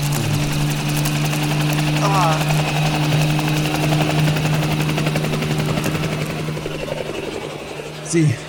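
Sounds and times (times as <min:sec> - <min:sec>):
helicopter rotor chop and engine drone taking off and flying away: 0:00.0 - 0:08.4
person shouting: 0:02.0 - 0:02.5
speech: 0:08.1 - 0:08.4.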